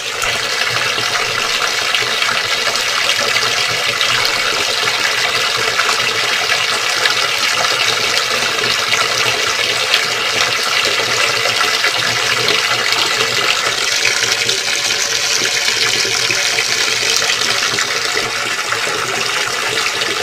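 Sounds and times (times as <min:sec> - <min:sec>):
water pouring into a bathtub with no plug in the drain: 0:00.0 - 0:20.2.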